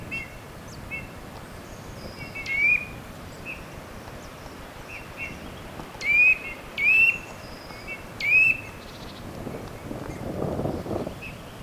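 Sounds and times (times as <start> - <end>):
Eurasian nuthatch Sitta europaea giving rising whistled calls: 2.2 - 3.6, 6.0 - 9.1.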